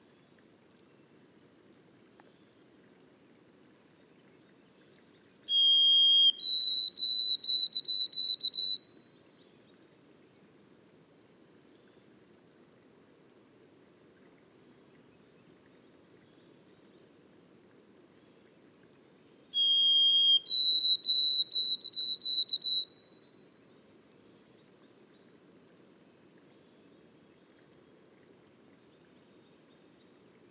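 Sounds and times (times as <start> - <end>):
white-throated sparrow song in the boreal forest of Haute-Côte-Nord: 5.5 - 8.8, 19.6 - 23.1.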